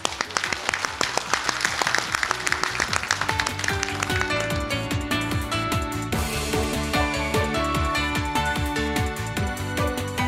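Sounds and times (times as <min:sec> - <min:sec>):
audience applause at an investor relations seminar: 0:00.0 - 0:05.0
upbeat music with a steady rhythmic beat: 0:00.2 - 0:10.2.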